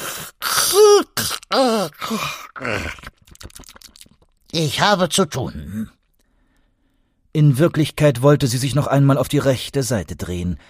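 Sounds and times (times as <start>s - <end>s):
person acting out a wide yawn: 0.0s - 3.0s
speech: 0.7s - 3.1s, 4.6s - 6.0s, 7.4s - 10.6s.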